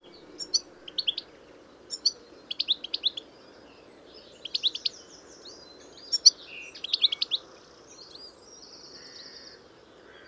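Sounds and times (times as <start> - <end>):
European goldfinch Carduelis carduelis twittering calls: 0.4 - 1.3, 1.9 - 3.2, 6.1 - 7.4.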